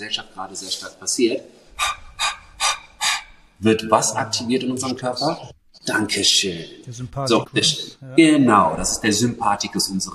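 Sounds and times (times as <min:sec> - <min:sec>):
speech: 0:00.0 - 0:02.0, 0:03.6 - 0:10.1
quick airy breathing in and out through the mouth: 0:01.6 - 0:03.6.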